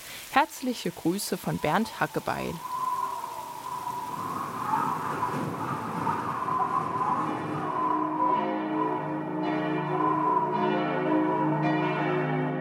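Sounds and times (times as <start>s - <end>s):
steady hiss: 0.0s - 9.4s
speech: 0.4s - 2.8s
church bells ringing in a dense overlapping peal: 5.0s - 12.5s.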